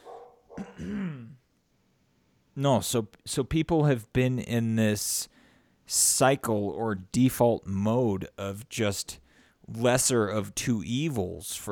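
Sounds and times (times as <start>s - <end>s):
dog barking and whining in the background: 0.0s - 0.8s
speech: 2.6s - 11.7s.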